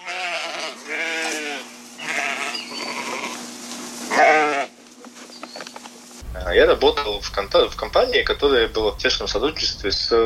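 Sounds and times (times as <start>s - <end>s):
sheep bleating: 0.0s - 3.5s, 4.1s - 4.8s
faint steady hum: 0.0s - 10.2s
speech: 6.5s - 10.2s.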